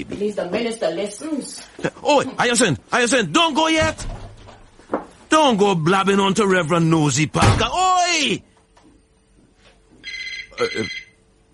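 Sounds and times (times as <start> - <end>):
speech: 0.0 - 4.2, 5.4 - 8.5, 10.6 - 11.0
old-style telephone bell ringing: 10.0 - 11.2.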